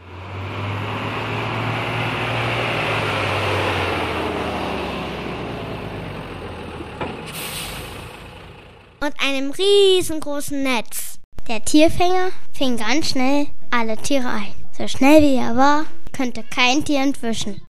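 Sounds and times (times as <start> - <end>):
rattling old car driving past: 0.0 - 9.0
speech: 9.0 - 17.7.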